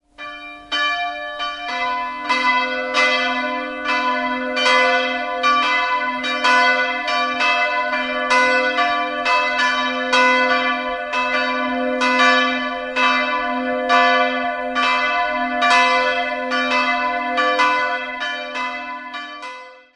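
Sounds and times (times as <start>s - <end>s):
church bells of Filialkirche in Lippertshofen ringing: 0.1s - 19.9s.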